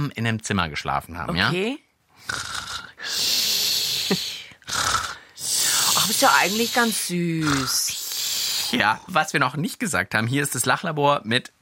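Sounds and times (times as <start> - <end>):
speech: 0.0 - 3.2, 4.1 - 4.3, 6.1 - 8.0, 8.7 - 11.6
person imitating a child's snoring: 2.2 - 9.1.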